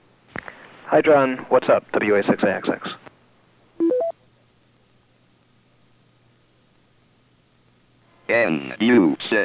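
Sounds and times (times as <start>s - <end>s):
speech: 0.9s - 3.0s, 8.3s - 9.4s
DTMF touch-tone beeps dialing a pager: 3.8s - 4.2s.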